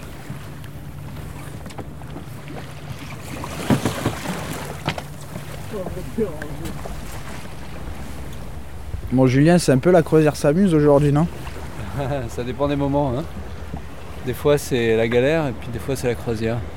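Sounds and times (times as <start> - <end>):
low constant rumble: 0.0 - 16.7
water washing past a sailboat hull: 0.0 - 16.7
speech: 5.8 - 7.0, 9.1 - 11.4, 12.0 - 13.4, 14.3 - 16.7
wind rushing across the microphone on a sailboat: 5.9 - 14.3.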